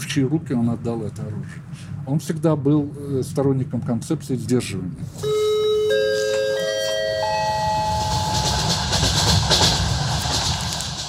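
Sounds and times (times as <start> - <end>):
speech: 0.2 - 5.4
personal railway carriage rolling on rails: 5.9 - 11.0.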